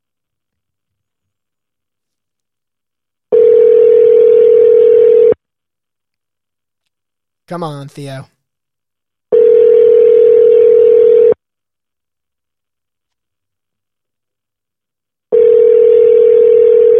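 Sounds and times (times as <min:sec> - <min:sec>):
long steady electronic ring tones from a phone line heard through a handset: 0:03.3 - 0:05.4, 0:09.3 - 0:11.4, 0:15.3 - 0:16.9
speech: 0:07.5 - 0:08.4.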